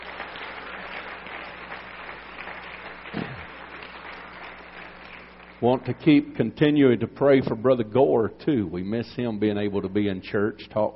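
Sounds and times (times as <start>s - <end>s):
church audience clapping hands for guests: 0.0s - 6.2s
speech: 5.6s - 10.9s.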